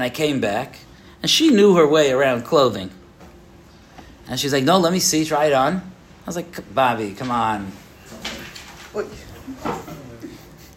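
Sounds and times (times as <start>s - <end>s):
speech: 0.0s - 3.0s, 4.3s - 7.8s, 9.0s - 10.0s
soft noise: 0.0s - 10.7s
loose papers flapping and rustling in the air: 8.1s - 9.9s.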